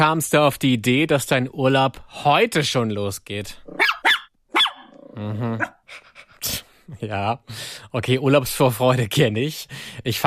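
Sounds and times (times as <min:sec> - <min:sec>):
speech: 0:00.0 - 0:03.9, 0:05.2 - 0:10.2
dog yipping: 0:03.7 - 0:05.0
dog barking: 0:03.8 - 0:04.9
dog growling: 0:04.9 - 0:05.8.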